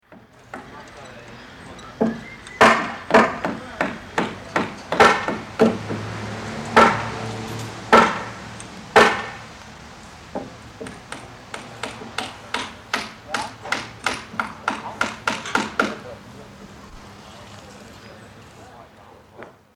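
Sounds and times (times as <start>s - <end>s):
mason's hammer striking on a construction site: 0.1s - 0.8s, 2.0s - 6.1s, 6.7s - 7.2s, 7.9s - 9.4s, 10.4s - 16.0s
carpenter's hammer striking on a construction site: 0.1s - 9.5s, 10.3s - 16.1s.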